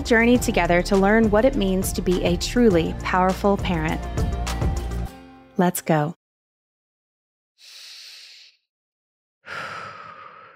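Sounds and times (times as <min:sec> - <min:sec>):
speech: 0:00.0 - 0:04.2, 0:05.6 - 0:06.2
deep breath in and out: 0:07.6 - 0:08.6, 0:09.4 - 0:10.5.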